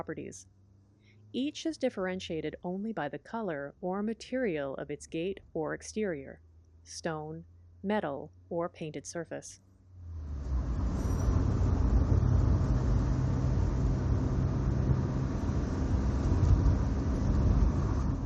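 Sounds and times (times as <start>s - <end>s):
speech: 0.0s - 0.6s, 1.3s - 9.6s
car engine rumbling while accelerating along a street: 9.9s - 18.2s
road noise: 9.9s - 18.2s.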